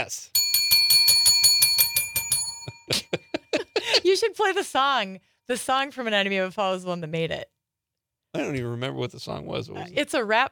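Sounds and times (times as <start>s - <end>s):
speech: 0.0s - 0.4s, 4.0s - 7.5s, 8.3s - 10.5s
bell ringing rapidly: 0.4s - 3.5s.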